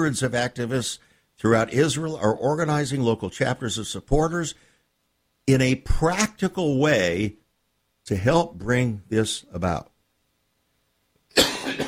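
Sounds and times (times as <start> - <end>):
speech: 0.0 - 4.7, 5.5 - 7.4, 8.1 - 9.9
person coughing: 11.3 - 11.8.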